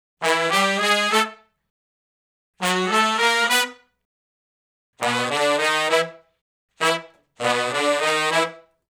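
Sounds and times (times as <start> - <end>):
R&B horn section riff in unison: 0.2 - 1.4, 2.6 - 3.8, 5.0 - 6.2, 6.8 - 8.7.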